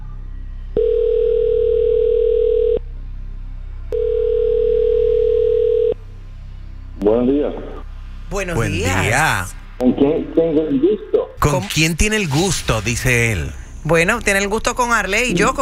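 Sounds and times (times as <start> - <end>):
long steady telephone ringback tones: 0.8 - 2.8, 3.9 - 6.0
speech: 8.4 - 15.6.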